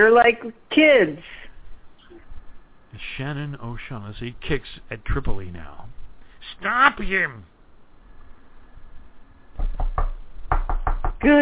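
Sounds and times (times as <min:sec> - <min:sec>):
speech: 0:00.0 - 0:01.4, 0:03.0 - 0:06.0, 0:06.6 - 0:07.5, 0:11.2 - 0:11.4
knocking on a door: 0:09.6 - 0:11.3.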